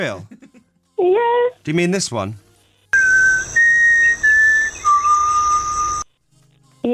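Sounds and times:
speech: 0:00.0 - 0:00.3, 0:01.0 - 0:02.4
person whistling a four-note signal tune: 0:03.0 - 0:06.1.

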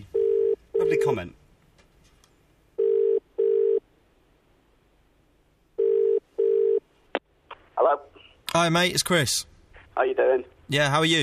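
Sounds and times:
telephone ringing while connecting a caller: 0:00.1 - 0:01.2, 0:02.8 - 0:03.8, 0:05.8 - 0:06.8
speech: 0:00.9 - 0:01.4, 0:08.6 - 0:11.2.

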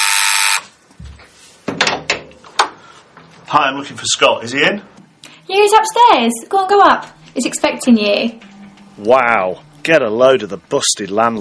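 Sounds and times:
harsh electric doorbell buzz: 0:00.0 - 0:00.7
speech: 0:03.5 - 0:11.3.

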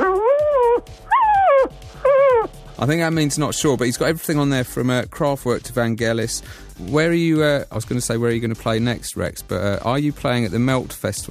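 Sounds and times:
dog howling: 0:00.0 - 0:02.5
speech: 0:02.8 - 0:11.2.

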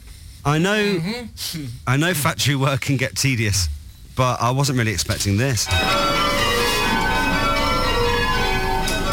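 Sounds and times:
speech: 0:00.4 - 0:06.1
several bells ringing at a bell foundry: 0:05.7 - 0:09.1.

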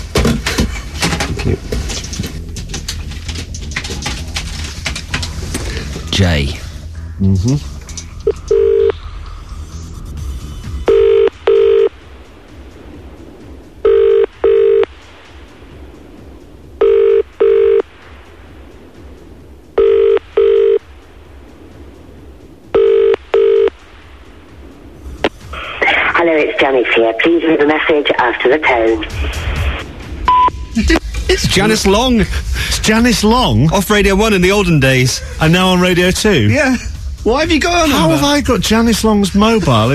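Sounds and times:
low hum: 0:00.0 - 0:39.9
speech: 0:01.4 - 0:01.7, 0:06.2 - 0:06.6, 0:07.2 - 0:07.8, 0:26.7 - 0:29.6, 0:30.8 - 0:39.9
phone dialing beeps: 0:08.2 - 0:09.0, 0:10.9 - 0:11.9, 0:13.9 - 0:14.9, 0:16.8 - 0:17.8, 0:19.8 - 0:20.8, 0:22.8 - 0:23.7, 0:30.3 - 0:30.7
phone ringing tone on an outgoing call: 0:08.2 - 0:09.0, 0:10.9 - 0:12.0, 0:13.8 - 0:14.9, 0:16.8 - 0:17.9, 0:19.8 - 0:20.9, 0:22.8 - 0:23.8.

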